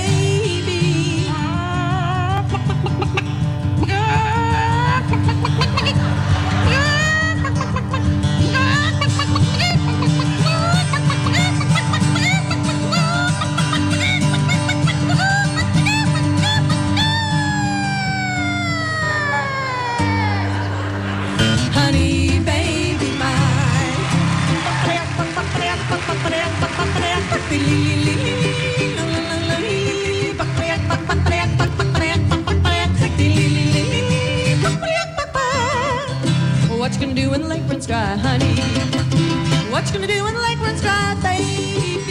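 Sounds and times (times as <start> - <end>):
steady busy musical backing: 0.0 - 42.0
woman imitating a hen's egg-laying cackle at a contest in Swartz Creek Michigan: 4.8 - 20.7.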